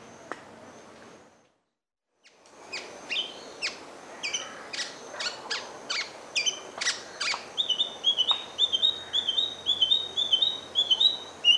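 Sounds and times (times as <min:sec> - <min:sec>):
large-billed scrubwren calls: 0:02.7 - 0:11.5.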